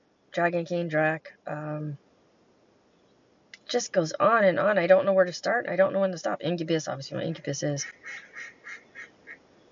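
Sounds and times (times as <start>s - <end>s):
speech: 0.4s - 2.0s, 3.7s - 8.8s
duck quacking: 7.8s - 9.4s.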